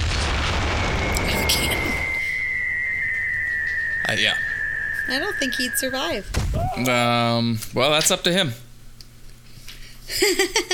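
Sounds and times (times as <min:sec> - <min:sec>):
cannon firing with a deep boom: 0:00.0 - 0:02.3, 0:06.3 - 0:06.8
thin high ringing tone: 0:00.0 - 0:07.4
speech: 0:04.1 - 0:04.4, 0:05.1 - 0:08.6, 0:10.2 - 0:10.7.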